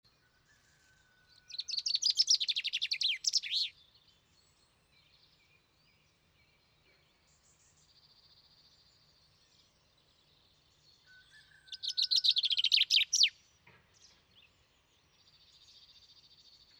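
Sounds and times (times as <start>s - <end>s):
common chaffinch Fringilla coelebs singing trilled phrases: 1.8s - 3.7s, 11.8s - 13.3s.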